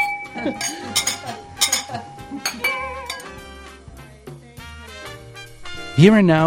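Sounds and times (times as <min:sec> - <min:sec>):
faint kitchen clatter: 0:00.0 - 0:03.5
glasses clinking in a toast: 0:00.0 - 0:03.8
speech: 0:00.4 - 0:03.1, 0:06.0 - 0:06.4.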